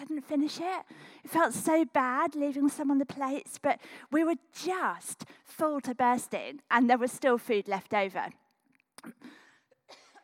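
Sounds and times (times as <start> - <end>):
speech: 0.2 - 8.4, 9.0 - 9.4
short breathy coughs: 9.0 - 10.2.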